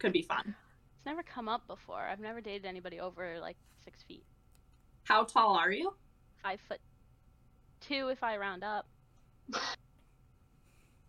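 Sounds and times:
speech: 0.0s - 4.4s, 5.0s - 6.9s, 7.8s - 8.9s, 9.5s - 9.8s
sneeze: 9.5s - 9.8s.

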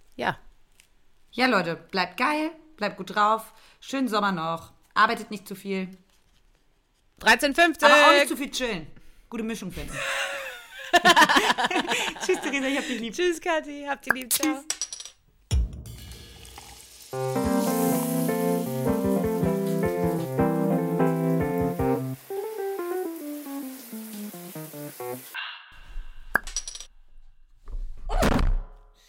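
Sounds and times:
speech: 0.2s - 0.4s, 1.3s - 6.0s, 7.2s - 10.3s, 11.0s - 14.8s, 17.1s - 17.5s
laughter: 9.9s - 13.2s
short melodic music passage: 17.2s - 23.7s.

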